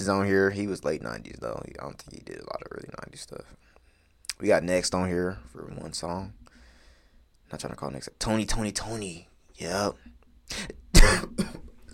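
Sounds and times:
speech: 0.0s - 3.7s, 4.4s - 6.4s, 7.5s - 11.9s
person coughing harshly: 10.5s - 11.7s.

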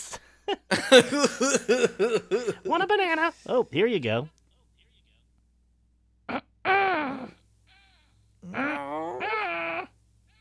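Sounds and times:
laughter: 0.5s - 2.9s
speech: 0.5s - 4.4s, 8.5s - 9.1s
person imitating throat clearing: 0.8s - 2.7s, 6.3s - 7.4s.

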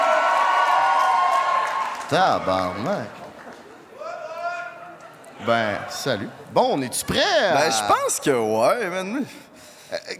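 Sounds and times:
large crowd cheering and applauding: 0.0s - 4.1s
speech: 2.1s - 3.2s, 5.4s - 10.1s.

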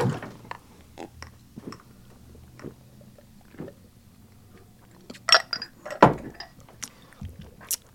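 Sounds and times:
scattered knocks and rustling handling noise: 0.0s - 0.6s, 5.3s - 7.6s
two glasses of Flaming Dr. Pepper drinks clinking in a toast: 5.1s - 6.7s.

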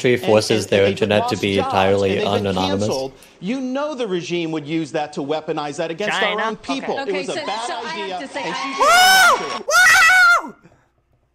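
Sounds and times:
speech: 0.0s - 10.6s
loud shrill drawn-out screams: 8.8s - 10.6s.

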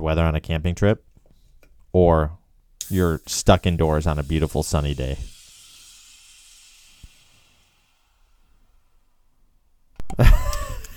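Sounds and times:
speech: 0.1s - 1.1s, 1.9s - 5.4s, 10.2s - 10.9s
freshly opened beer can fizzing over: 2.8s - 9.0s
laughter: 10.1s - 10.9s.

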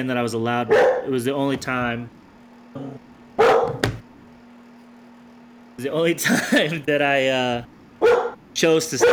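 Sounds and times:
speech: 0.0s - 2.2s, 2.8s - 3.5s, 5.8s - 9.1s
faint steady hum: 0.0s - 9.1s
dog barking: 0.7s - 1.1s, 3.4s - 3.8s, 8.0s - 8.4s.

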